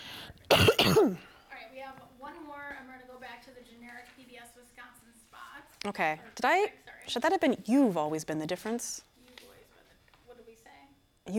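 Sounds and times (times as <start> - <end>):
harsh coughs: 0.5 - 1.3
speech: 0.9 - 1.3, 3.5 - 9.1.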